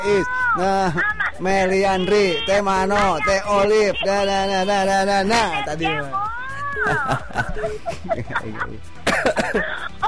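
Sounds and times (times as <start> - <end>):
laughter: 0.0 - 3.3, 4.3 - 10.0
speech: 0.0 - 9.9
throat clearing: 9.1 - 9.6
person coughing: 9.1 - 9.9.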